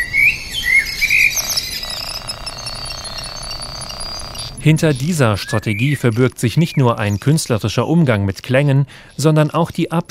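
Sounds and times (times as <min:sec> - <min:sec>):
partly electronic solar-powered synthetic bird chirps: 0:00.0 - 0:07.6
brief buzzy tones: 0:00.9 - 0:06.9
speech: 0:04.6 - 0:10.0.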